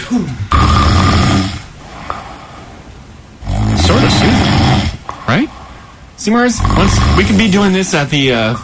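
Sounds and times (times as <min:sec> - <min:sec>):
speech: 0:00.1 - 0:00.8, 0:05.3 - 0:05.6, 0:06.2 - 0:08.6
loud rattling snore: 0:00.5 - 0:01.7, 0:03.4 - 0:05.1, 0:06.5 - 0:07.7
quiet breathing: 0:01.6 - 0:07.7.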